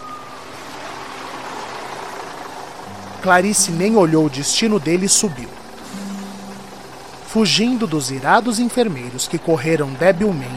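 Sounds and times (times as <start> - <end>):
broad hiss of street noise: 0.0 - 10.5
large bus engine idling: 0.0 - 10.5
speech: 3.2 - 5.6, 7.3 - 10.5.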